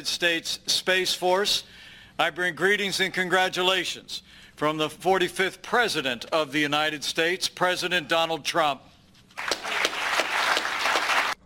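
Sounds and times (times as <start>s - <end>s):
speech: 0.0s - 9.5s
crowd applauding after a speech: 9.4s - 11.4s.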